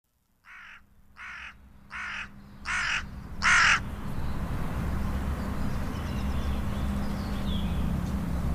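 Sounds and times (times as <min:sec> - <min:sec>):
low rumbling background noise: 0:00.1 - 0:08.5
hooded crow cawing: 0:00.4 - 0:03.8.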